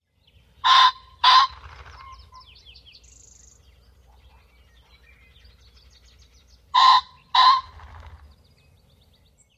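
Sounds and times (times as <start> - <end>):
male Ring-necked Pheasant crowing: 0.6 - 2.6, 6.6 - 8.3
Ring-necked Pheasant wing flutter: 1.5 - 2.2, 7.7 - 8.4.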